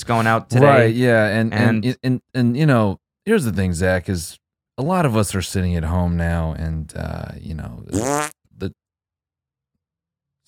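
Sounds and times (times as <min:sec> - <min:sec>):
speech: 0:00.0 - 0:08.8
buzzy fart sound effect from video-call extension: 0:07.9 - 0:08.4.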